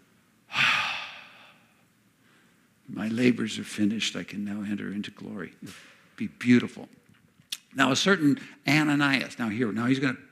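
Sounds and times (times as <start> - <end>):
long exhaled breath sigh: 0.5 - 1.8
speech: 2.9 - 7.0, 7.7 - 10.3.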